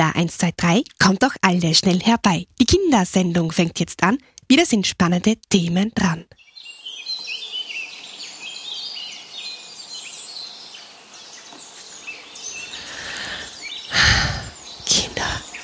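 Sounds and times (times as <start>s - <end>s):
speech: 0.1s - 6.4s
several birds chirping and singing in an outdoor chorus: 6.0s - 15.6s.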